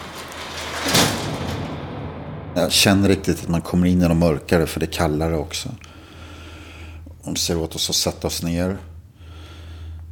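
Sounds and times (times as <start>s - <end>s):
heavy garage doors being pulled shut: 0.0s - 5.5s
speech: 2.6s - 5.9s, 7.2s - 8.9s.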